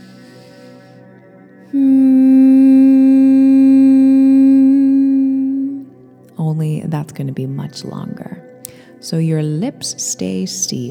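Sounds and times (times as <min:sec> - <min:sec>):
low nasal hum of humming bumblebee breath yoga breathing exercise: 0:01.7 - 0:05.9
speech: 0:06.9 - 0:08.4, 0:09.0 - 0:10.8.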